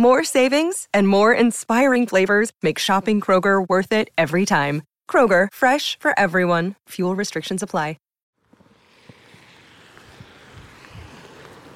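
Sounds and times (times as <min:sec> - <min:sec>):
speech: 0:00.0 - 0:08.0
wind rushing across a valley toward the Pennine moors on a cold wet day: 0:08.7 - 0:11.7.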